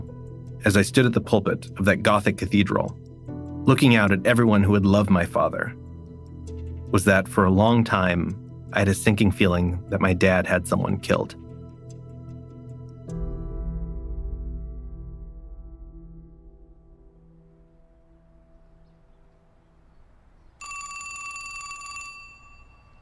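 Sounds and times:
speech: 0.6 - 5.8, 6.9 - 11.4
old-fashioned telephone bell ringing: 20.6 - 22.9.

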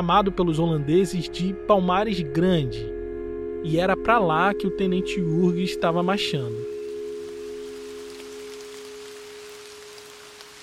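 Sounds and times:
speech: 0.0 - 3.0, 3.6 - 6.7
low constant humming drone: 2.8 - 10.4
heavy downpour at sunset in the mountains: 6.8 - 10.6.

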